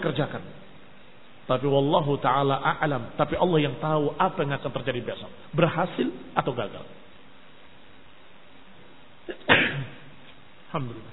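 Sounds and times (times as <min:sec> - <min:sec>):
speech: 0:00.2 - 0:00.7, 0:01.5 - 0:07.0, 0:10.7 - 0:11.1
sharp sneeze: 0:09.3 - 0:10.1.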